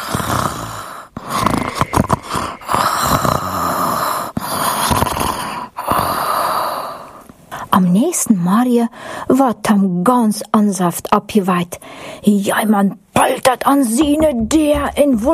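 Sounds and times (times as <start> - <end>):
steady rhythmic breathing turning into snoring: 0.0 - 7.1
speech: 8.4 - 15.3.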